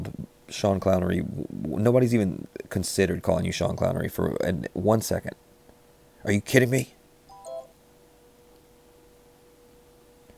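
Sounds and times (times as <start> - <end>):
quiet steady low hum: 0.0 - 10.3
speech: 0.5 - 5.4, 6.2 - 7.0
faint electronic microwave beep: 7.3 - 7.8.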